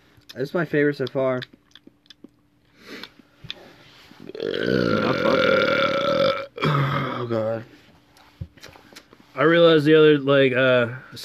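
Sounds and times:
speech: 0:00.4 - 0:01.6, 0:04.4 - 0:05.1, 0:09.4 - 0:11.2
soft mouth clicks and chewing: 0:01.0 - 0:02.4
long loud resonant burp: 0:04.3 - 0:07.4.

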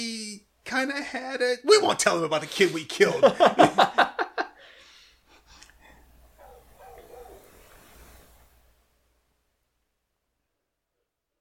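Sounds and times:
speech: 0:00.7 - 0:04.0
laughter: 0:03.0 - 0:04.6
dog barking: 0:06.4 - 0:07.6.

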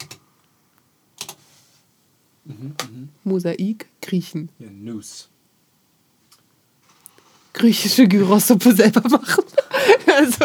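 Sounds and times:
typing on a computer keyboard: 0:00.0 - 0:00.2, 0:01.2 - 0:01.4
low hiss: 0:00.0 - 0:10.4
speech: 0:02.5 - 0:05.3, 0:07.6 - 0:10.4
laughter: 0:09.2 - 0:10.4.

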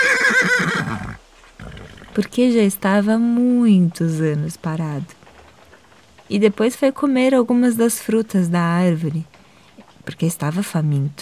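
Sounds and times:
horse neighing: 0:00.0 - 0:02.3
speech: 0:02.2 - 0:05.2, 0:06.3 - 0:09.4, 0:10.0 - 0:11.2.

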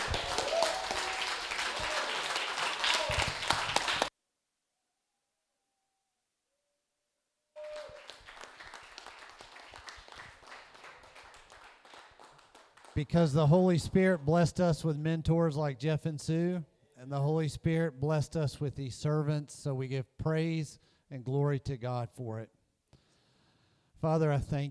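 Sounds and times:
crowd applauding: 0:00.0 - 0:04.1, 0:07.6 - 0:14.3
speech: 0:13.0 - 0:22.6, 0:24.0 - 0:24.6.

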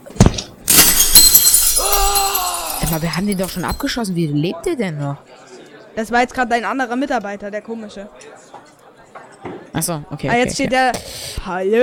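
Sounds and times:
window glass shattering as a video game character leaps through: 0:00.7 - 0:04.0
speech: 0:02.9 - 0:05.4, 0:06.0 - 0:08.4, 0:09.8 - 0:11.8.

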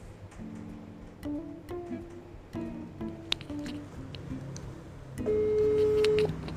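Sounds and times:
short electronic beeps: 0:05.2 - 0:06.3
telephone ringback tone: 0:05.2 - 0:06.4.

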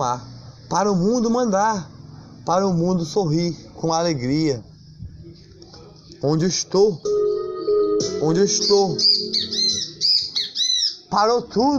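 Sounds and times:
speech: 0:00.0 - 0:04.7, 0:06.2 - 0:07.1, 0:08.0 - 0:09.6, 0:11.1 - 0:11.7
great kiskadee giving shrill buzzy squawking notes: 0:08.5 - 0:11.1.

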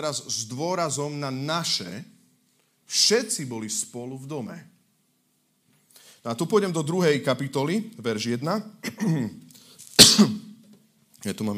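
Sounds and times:
speech: 0:00.0 - 0:02.1, 0:02.9 - 0:04.8, 0:06.2 - 0:09.4, 0:10.0 - 0:10.4, 0:11.2 - 0:11.5
person sneezing close to the mic during a live broadcast: 0:08.8 - 0:10.6.

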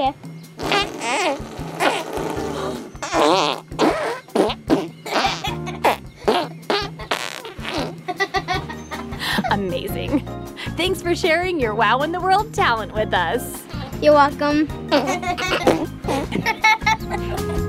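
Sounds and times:
speech: 0:00.0 - 0:00.3, 0:11.1 - 0:16.5
child blowing wet raspberry fart noises with the mouth: 0:00.6 - 0:08.0
laughter: 0:08.1 - 0:09.7, 0:14.9 - 0:17.6.

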